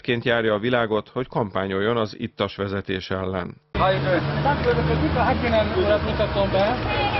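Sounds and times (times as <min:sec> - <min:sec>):
speech: 0:00.0 - 0:07.1
city road traffic on Váci út in Budapest: 0:03.7 - 0:07.1
indistinct voices murmuring at roadside breath test: 0:03.8 - 0:07.1.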